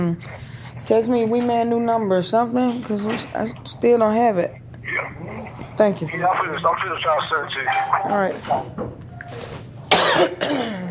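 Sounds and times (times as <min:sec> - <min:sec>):
speech: 0:00.0 - 0:09.5, 0:10.1 - 0:10.8
nervous cough: 0:09.9 - 0:10.8.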